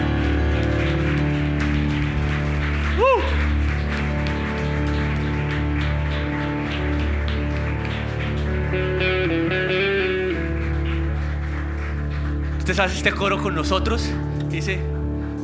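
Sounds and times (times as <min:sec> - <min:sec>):
church audience applauding during a worship service: 0:00.0 - 0:15.4
sustained instrumental music: 0:00.0 - 0:15.4
rising whoop or whistle: 0:03.0 - 0:03.4
speech: 0:12.8 - 0:14.9.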